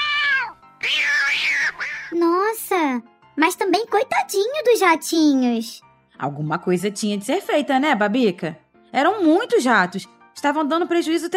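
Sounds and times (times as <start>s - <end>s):
young large cat meowing: 0.0s - 2.2s
speech: 3.0s - 11.3s.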